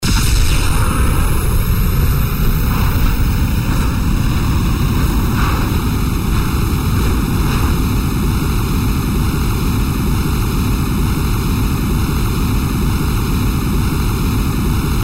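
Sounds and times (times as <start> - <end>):
nitrous oxide turbo: 0.0 - 15.0.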